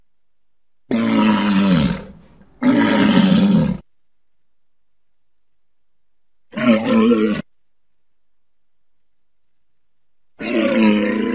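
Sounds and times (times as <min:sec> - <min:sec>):
walrus growling roars in Antarctica: 0:00.9 - 0:03.8, 0:10.4 - 0:11.3.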